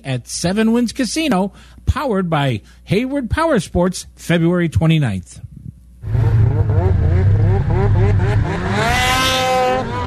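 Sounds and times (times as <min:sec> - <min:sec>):
speech: 0:00.0 - 0:05.5
snowmobile engines racing at a winter event in Hayward, Wisconsin: 0:06.1 - 0:10.0.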